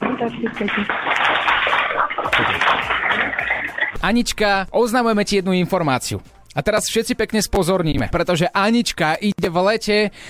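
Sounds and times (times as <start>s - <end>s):
roomful of children applauding: 0.0s - 4.0s
speech: 0.2s - 1.2s, 2.2s - 10.2s.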